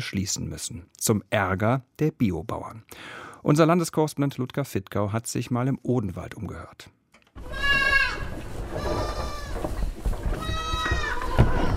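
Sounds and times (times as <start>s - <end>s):
speech: 0.0s - 7.6s
Thuringian Forest goats bleating in a barn: 7.4s - 11.7s.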